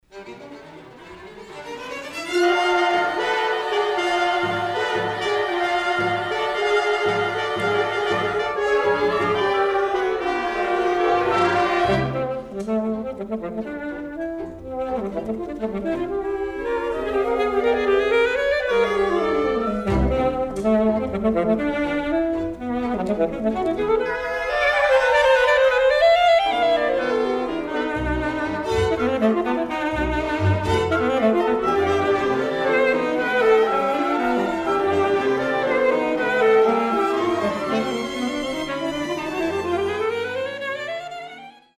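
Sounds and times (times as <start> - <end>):
alto saxophone with eleven-instrument chamber ensemble: 0.4 - 41.7.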